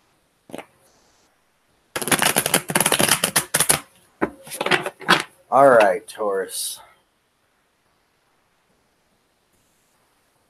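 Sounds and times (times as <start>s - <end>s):
deck of tarot cards shuffled: 2.0s - 6.0s
speech: 5.5s - 6.9s.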